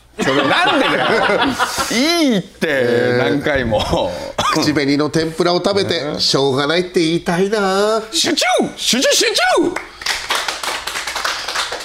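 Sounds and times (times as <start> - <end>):
laughter: 0.2 - 4.7
speech: 0.2 - 9.9
small group hand clapping: 9.7 - 11.8.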